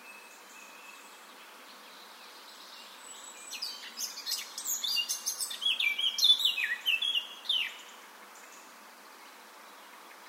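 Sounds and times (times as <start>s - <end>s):
faint background hiss: 0.0s - 10.2s
Eurasian blackcap Sylvia atricapilla song with fluted whistles: 3.4s - 7.8s.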